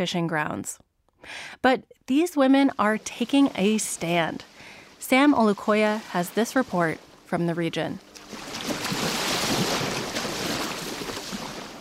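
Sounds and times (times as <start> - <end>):
speech: 0.0 - 8.5
Atlantic Ocean surf breaking along a shoreline: 2.6 - 11.7
wind: 2.6 - 11.7.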